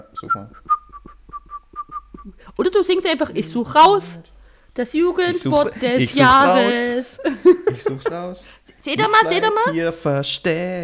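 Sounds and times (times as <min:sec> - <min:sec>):
person whistling a short tune: 0:00.0 - 0:02.3
speech: 0:00.1 - 0:00.7, 0:02.2 - 0:10.8
laughter: 0:05.3 - 0:08.4.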